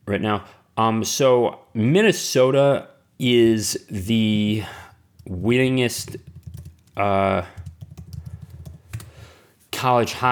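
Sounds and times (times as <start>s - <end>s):
speech: 0.1s - 6.3s, 7.0s - 7.6s, 9.8s - 10.3s
typing on a computer keyboard: 5.2s - 9.1s.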